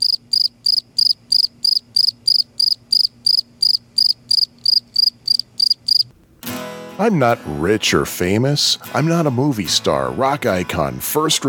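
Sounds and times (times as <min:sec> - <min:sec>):
crickets chirping: 0:00.0 - 0:06.1
speech: 0:07.0 - 0:11.4.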